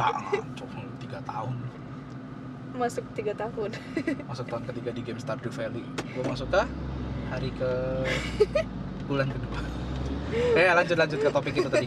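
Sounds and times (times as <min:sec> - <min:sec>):
speech: 0:00.0 - 0:01.8, 0:02.8 - 0:11.8
steady low engine rumble of a large truck: 0:00.0 - 0:11.8
person laughing: 0:08.0 - 0:08.6, 0:10.3 - 0:11.8.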